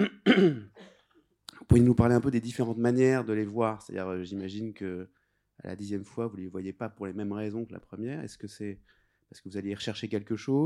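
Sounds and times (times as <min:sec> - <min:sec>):
speech: 0:00.0 - 0:00.7, 0:01.7 - 0:10.6
person clearing throat: 0:00.0 - 0:01.0.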